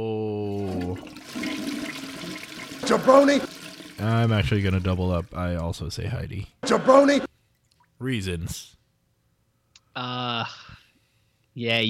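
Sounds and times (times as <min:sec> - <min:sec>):
toilet flushing: 0:00.5 - 0:05.5
speech: 0:02.9 - 0:07.3, 0:08.0 - 0:08.8, 0:10.0 - 0:10.8, 0:11.6 - 0:11.8.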